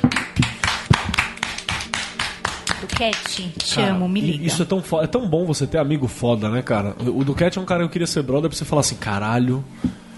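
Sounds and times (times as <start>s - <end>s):
applause of steady evenly paced handclaps: 0.0s - 3.8s
speech: 3.0s - 10.0s.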